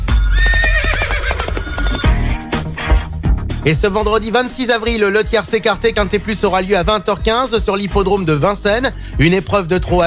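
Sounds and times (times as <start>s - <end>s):
horse neighing: 0.2s - 2.2s
speech: 3.6s - 10.0s.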